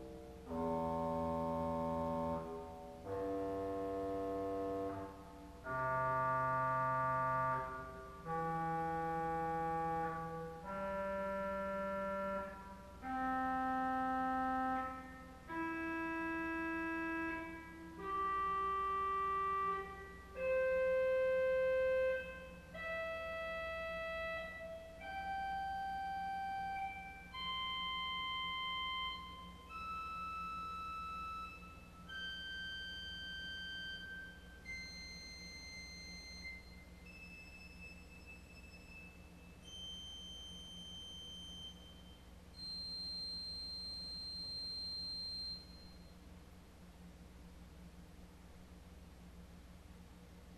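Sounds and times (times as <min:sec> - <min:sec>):
clarinet arpeggio: 0:00.5 - 0:34.4
organ stop: 0:00.5 - 0:34.9.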